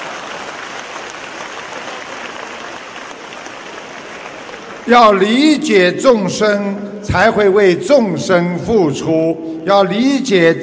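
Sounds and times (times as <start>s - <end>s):
audience applause: 0.0s - 5.3s
speech: 4.9s - 10.6s.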